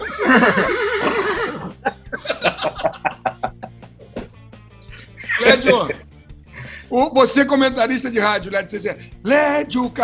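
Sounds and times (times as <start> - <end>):
horse neighing: 0.0 - 1.8
laughter: 0.0 - 3.9, 4.8 - 6.0
speech: 0.3 - 1.2, 5.6 - 6.0, 7.0 - 10.0.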